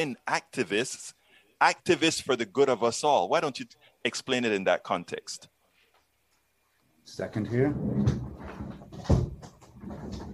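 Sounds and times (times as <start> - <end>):
speech: 0.0 - 5.5, 7.1 - 8.3
soft knocks and rattles of wood: 7.7 - 10.3
door handled with a clunk and a sharp thud in a house: 7.8 - 10.3.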